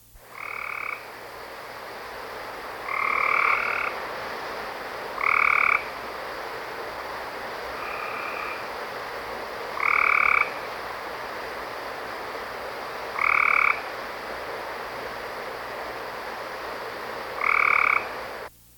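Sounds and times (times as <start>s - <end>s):
southern gray treefrog rain call: 0.2s - 18.5s.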